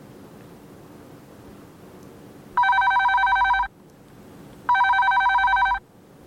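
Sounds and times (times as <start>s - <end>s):
telephone ringing with electronic trill: 2.6s - 3.7s, 4.7s - 5.8s.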